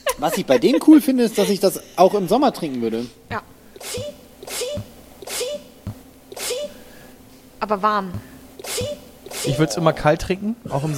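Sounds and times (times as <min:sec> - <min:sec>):
laughter: 0:00.0 - 0:02.9
speech: 0:00.2 - 0:04.2, 0:07.7 - 0:10.9
small cute sneezes: 0:03.8 - 0:05.7, 0:06.3 - 0:06.9, 0:08.6 - 0:09.6.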